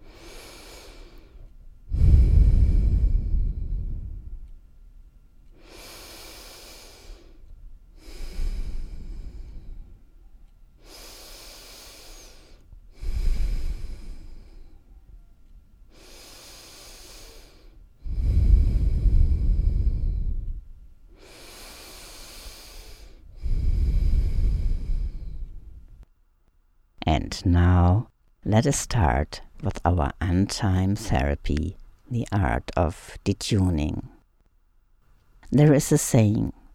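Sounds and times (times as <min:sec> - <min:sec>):
people breathing in unison during a group relaxation exercise: 0:00.0 - 0:04.5, 0:05.5 - 0:15.2, 0:15.9 - 0:25.8
speech: 0:27.4 - 0:34.2, 0:35.5 - 0:36.6.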